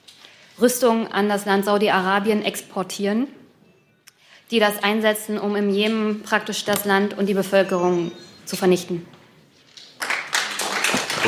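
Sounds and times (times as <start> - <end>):
speech: 0.6 - 3.4, 4.5 - 9.2
audience applause: 10.0 - 11.2.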